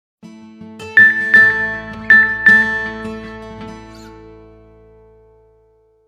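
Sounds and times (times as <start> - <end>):
mobile phone message ringtone: 1.0 - 3.2.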